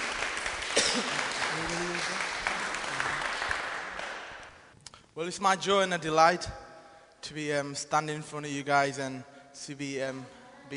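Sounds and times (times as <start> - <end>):
audience applause of encouragement: 0.0 - 4.7
speech: 0.9 - 2.3, 5.2 - 6.6, 7.2 - 10.7.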